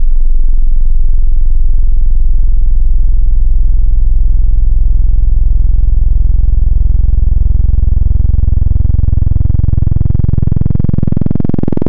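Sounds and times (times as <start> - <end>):
analog PWM sub bass on wavetable synth: 0.0 - 11.8.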